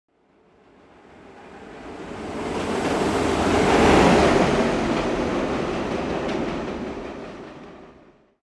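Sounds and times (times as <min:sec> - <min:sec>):
train passing: 0:00.2 - 0:08.3.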